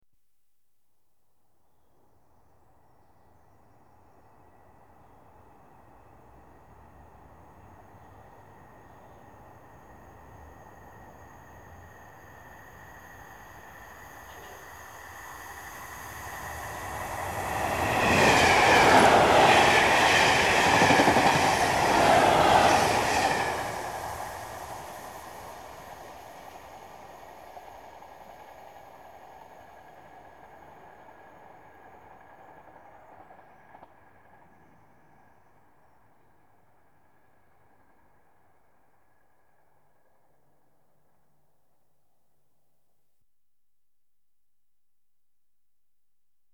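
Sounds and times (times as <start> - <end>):
electric commuter trains passing: 3.8 - 39.5.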